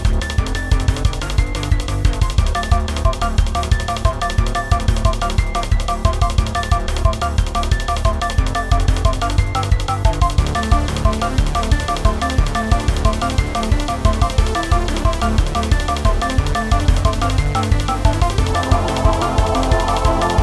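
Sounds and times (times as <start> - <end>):
keyboards playing: 0.2 - 20.4.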